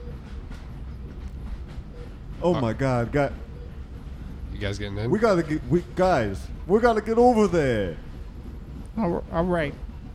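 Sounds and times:
train rumbling along tracks with wheels clacking on rail: 0.0 - 10.1
speech: 2.4 - 3.5, 4.6 - 8.1, 9.0 - 9.8.

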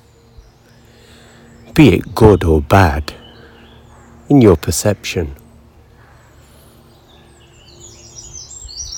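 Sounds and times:
several birds chirping and twittering: 0.0 - 8.9
speech: 1.7 - 3.2, 4.3 - 5.4.

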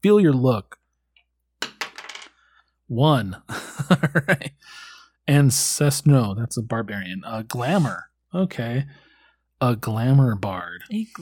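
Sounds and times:
speech: 0.0 - 0.8, 2.9 - 9.0, 9.6 - 11.2
small six-sided galaxy die clattering on a hard tabletop: 1.6 - 2.4
laughter: 3.5 - 4.7.

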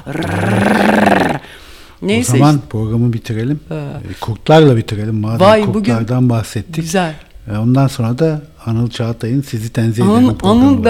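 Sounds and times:
speech: 0.0 - 0.7, 2.0 - 10.8
person imitating a dog's growl: 0.0 - 1.5.

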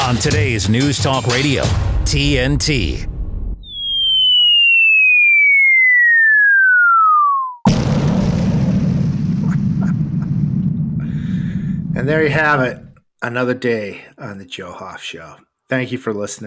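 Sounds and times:
speech: 0.1 - 3.1, 12.0 - 16.4
loud bomb explosion with heavy rumbling roar and crackles: 1.7 - 4.5, 7.6 - 13.0
long smooth whistling tone gliding downward in a radio jingle: 3.6 - 7.7.

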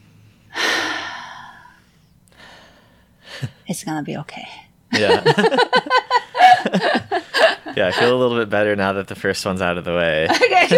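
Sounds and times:
big deep breath drawn in: 0.4 - 3.6
speech: 3.4 - 7.0, 7.8 - 10.7
laughter: 4.9 - 8.4, 10.2 - 10.7.

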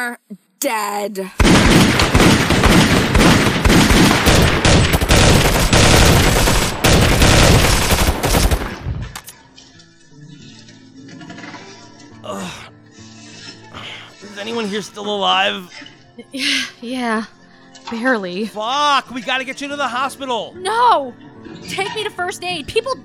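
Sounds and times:
speech: 0.0 - 2.4, 14.4 - 23.0
rapid continuous automatic gunfire aimed at a boss: 1.4 - 9.3.

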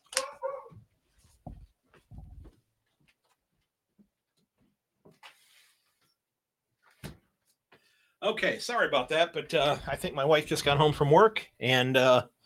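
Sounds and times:
dog barking: 0.1 - 0.8
speech: 8.2 - 12.3.

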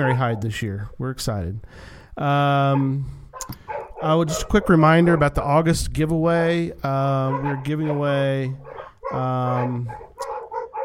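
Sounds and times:
speech: 0.0 - 10.1
dog barking: 2.7 - 5.6, 7.1 - 10.8.

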